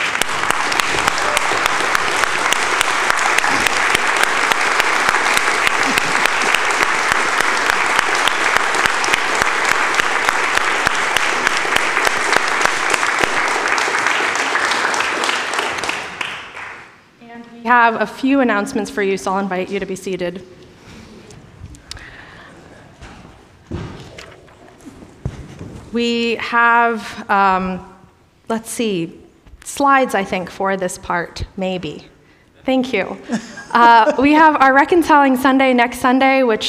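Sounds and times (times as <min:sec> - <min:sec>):
large crowd applauding: 0:00.0 - 0:17.0
laughter: 0:05.7 - 0:06.6, 0:33.2 - 0:34.6
speech: 0:17.9 - 0:20.6, 0:26.0 - 0:27.9, 0:28.5 - 0:32.1, 0:32.7 - 0:36.6.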